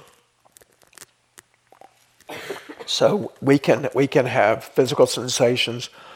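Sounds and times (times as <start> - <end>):
loud harsh cough: 2.3 - 3.0
speech: 2.9 - 6.1.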